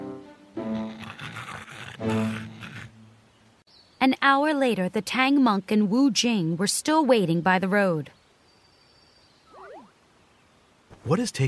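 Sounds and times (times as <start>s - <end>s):
loud snoring: 0.7s - 3.0s
speech: 2.0s - 2.4s, 4.2s - 8.2s, 11.1s - 11.4s.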